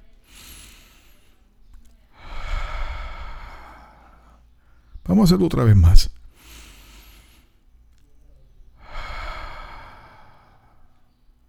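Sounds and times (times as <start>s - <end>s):
slow deep breath in and out: 0.2s - 1.4s, 2.2s - 7.6s, 8.8s - 11.1s
speech: 5.1s - 6.2s.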